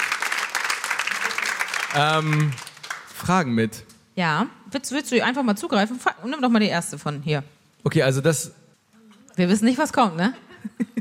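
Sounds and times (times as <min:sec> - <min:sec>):
crowd applauding in a large hall: 0:00.0 - 0:03.5
speech: 0:01.9 - 0:02.6, 0:03.2 - 0:08.6, 0:09.4 - 0:10.5.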